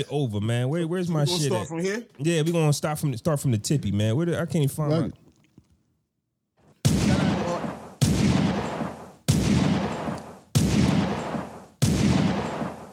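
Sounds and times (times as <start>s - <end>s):
speech: 0.0s - 5.2s
gunshot sound effects: 6.8s - 12.9s.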